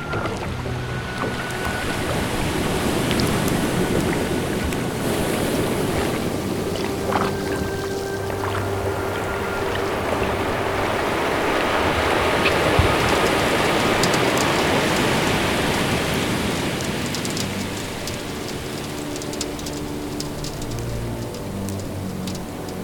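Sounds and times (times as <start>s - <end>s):
oar paddling a boat through cold water: 0.0s - 22.8s
wind noise: 0.0s - 22.8s.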